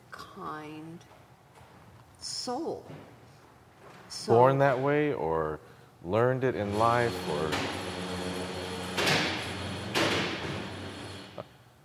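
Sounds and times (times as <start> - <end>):
speech: 0.4 - 1.2, 2.2 - 3.2, 4.1 - 8.0
sliding door rumbling open as someone walks in: 6.6 - 11.4.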